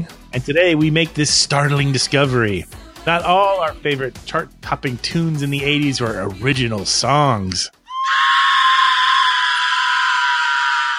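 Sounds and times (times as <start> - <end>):
speech: 0.4 - 8.3
person screaming: 7.9 - 10.9.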